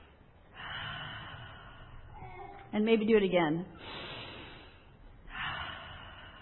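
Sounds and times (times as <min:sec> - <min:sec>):
deep airy breath drawn in: 0:00.5 - 0:02.5, 0:03.8 - 0:06.4
speech: 0:02.7 - 0:04.0.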